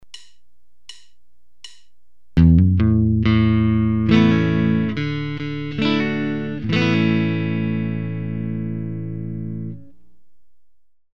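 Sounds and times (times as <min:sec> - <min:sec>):
guitar chord strummed while hammering on one note: 0:02.4 - 0:09.8.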